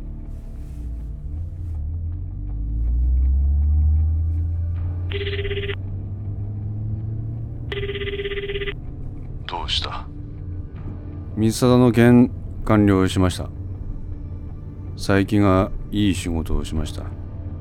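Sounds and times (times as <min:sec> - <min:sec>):
car engine starting and car driving off: 0:00.0 - 0:17.2
speech: 0:05.1 - 0:05.6, 0:09.7 - 0:10.2, 0:11.4 - 0:13.6, 0:15.0 - 0:17.2
phone ringing: 0:05.1 - 0:05.8, 0:07.6 - 0:08.8.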